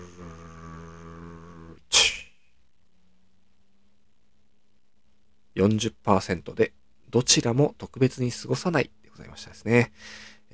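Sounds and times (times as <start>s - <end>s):
voice imitating a drumroll before announcing poll results: 0.0s - 2.2s
sharp breathy burst: 1.9s - 2.4s, 10.0s - 10.4s
speech: 5.6s - 10.5s.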